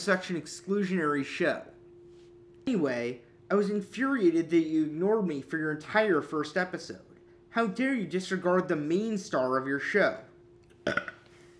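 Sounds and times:
speech: 0:00.0 - 0:01.7, 0:02.7 - 0:10.3
faint steady hum: 0:00.0 - 0:11.5
burp: 0:10.7 - 0:11.3.

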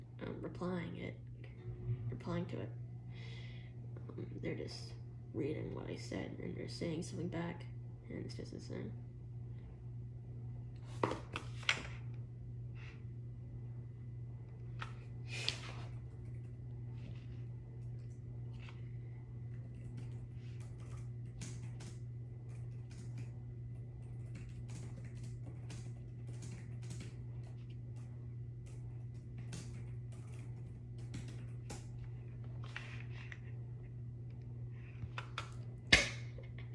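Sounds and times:
constant low electrical hum: 0:00.0 - 0:36.7
speech: 0:00.4 - 0:01.3, 0:02.2 - 0:02.8, 0:04.2 - 0:09.0
keyboard typing: 0:19.5 - 0:23.4, 0:24.0 - 0:32.0.

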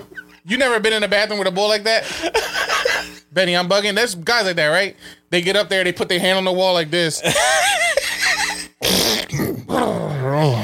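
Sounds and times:
speech: 0:00.4 - 0:07.8
voice imitating a fart with a buzzy raspberry: 0:08.8 - 0:10.6.

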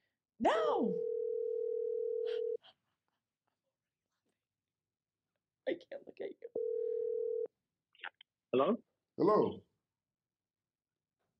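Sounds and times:
speech: 0:00.4 - 0:01.1, 0:05.8 - 0:06.7, 0:08.5 - 0:09.7
telephone dial tone while dialing a call: 0:01.0 - 0:02.6, 0:06.6 - 0:07.5.

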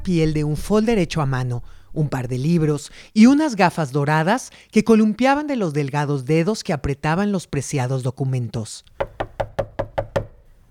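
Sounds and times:
speech: 0:00.0 - 0:09.1
quick knocks on the wooden door of a building: 0:09.0 - 0:10.4.

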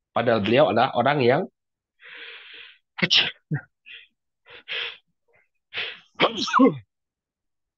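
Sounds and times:
speech: 0:00.2 - 0:01.6, 0:03.0 - 0:03.7, 0:04.6 - 0:05.0, 0:06.2 - 0:06.9
person sneezing: 0:06.2 - 0:06.8.

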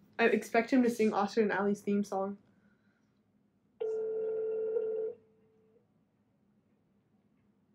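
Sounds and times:
speech: 0:00.2 - 0:02.4
electronic ringback tone from an outgoing phone call: 0:03.8 - 0:05.2.

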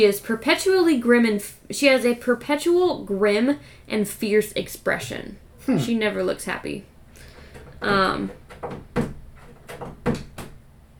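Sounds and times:
speech: 0:00.0 - 0:06.9, 0:07.8 - 0:09.0
cat clawing at a door: 0:07.4 - 0:10.6.

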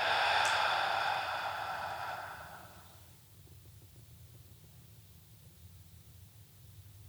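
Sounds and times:
deep breath in and slow exhale during a seated guided relaxation exercise: 0:00.0 - 0:02.9.

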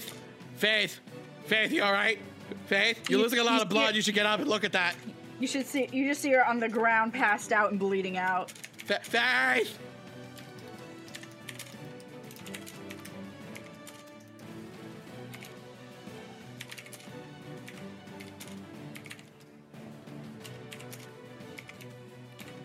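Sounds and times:
speech: 0:00.6 - 0:09.9
typing on a computer keyboard: 0:08.3 - 0:09.2, 0:10.3 - 0:14.4, 0:15.3 - 0:15.6, 0:16.6 - 0:19.4, 0:20.4 - 0:22.6.

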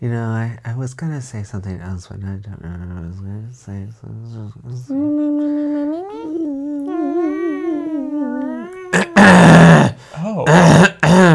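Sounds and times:
speech: 0:00.0 - 0:06.2
wavering drawn-out vocal tone: 0:04.0 - 0:11.3
loud raspy forceful throat clearing: 0:08.9 - 0:11.3.

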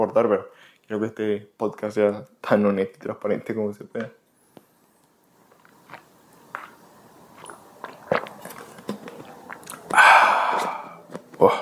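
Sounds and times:
speech: 0:00.0 - 0:04.2
wet mouth clicks: 0:07.4 - 0:11.0
person drinking a glass of water with soft gulps: 0:07.4 - 0:11.6
faint swallowing noises: 0:09.4 - 0:11.6.

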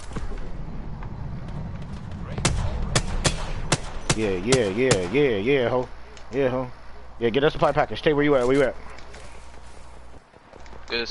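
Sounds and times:
Sentinel rifle shots in a video game: 0:02.4 - 0:05.1
speech: 0:04.2 - 0:08.9.

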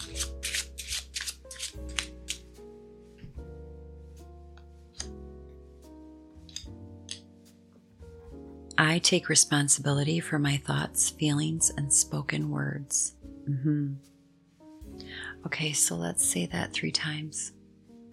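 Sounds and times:
shuffling a deck of cards: 0:00.0 - 0:02.5
calm sustained music: 0:00.0 - 0:18.1
speech: 0:08.8 - 0:14.1, 0:15.4 - 0:17.6.

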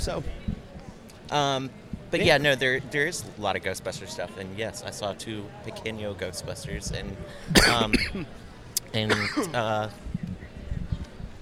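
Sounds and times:
speech: 0:00.0 - 0:00.6, 0:01.3 - 0:10.1
person coughing into a microphone: 0:07.5 - 0:08.3, 0:09.1 - 0:09.6.

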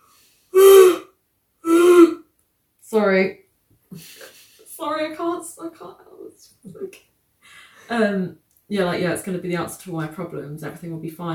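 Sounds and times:
person yawning aloud with voiced groans: 0:00.5 - 0:02.2
speech: 0:02.9 - 0:11.3.

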